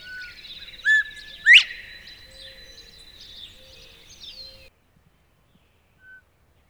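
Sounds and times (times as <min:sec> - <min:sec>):
Northern bobwhite whistled call: 0:00.0 - 0:04.7.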